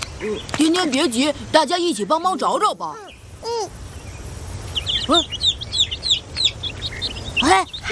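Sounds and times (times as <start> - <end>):
speech: 0.2 - 3.8, 5.1 - 5.4, 7.4 - 7.8
chick cheeping: 4.7 - 7.8.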